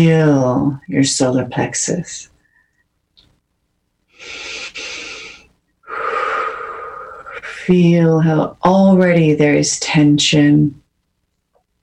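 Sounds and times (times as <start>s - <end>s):
speech: 0.0s - 2.3s, 7.7s - 10.8s
long deep breaths during a guided body-awareness relaxation exercise: 4.1s - 7.6s
faint short sniff: 4.2s - 7.6s.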